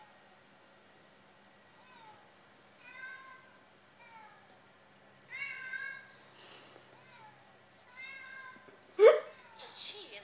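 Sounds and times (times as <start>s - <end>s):
low steady hum: 0.0s - 10.2s
several cats meowing in a cat room: 1.8s - 4.6s, 5.3s - 6.2s, 6.9s - 9.8s.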